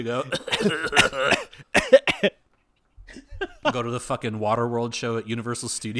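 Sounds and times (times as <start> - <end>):
speech: 0.0 - 2.4, 3.6 - 5.9
person coughing: 0.3 - 2.4, 3.1 - 3.8.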